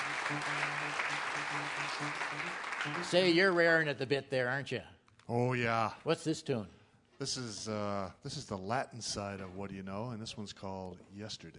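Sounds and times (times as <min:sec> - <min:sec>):
audience applause: 0:00.0 - 0:03.8
speech: 0:00.3 - 0:11.5.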